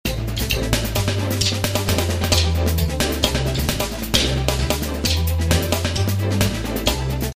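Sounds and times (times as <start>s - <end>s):
fusion music on a Dm7 chord: 0.0s - 7.3s.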